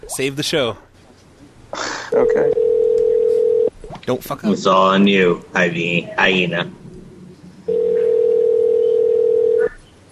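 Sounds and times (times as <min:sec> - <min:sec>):
speech: 0:00.0 - 0:00.9, 0:02.1 - 0:02.7, 0:04.0 - 0:06.8
cell phone call ringing tone on the line: 0:02.5 - 0:03.7, 0:07.7 - 0:09.7.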